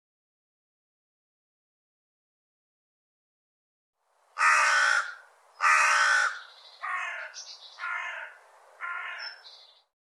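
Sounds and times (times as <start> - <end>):
rough cawing bird calls: 4.4 - 9.8.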